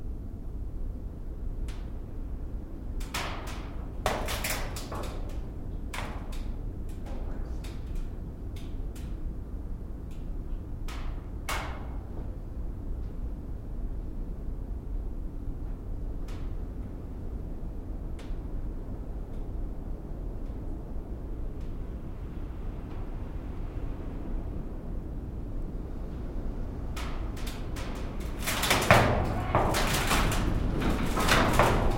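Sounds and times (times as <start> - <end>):
wind: 0.0 - 31.9
metal door: 27.6 - 31.9.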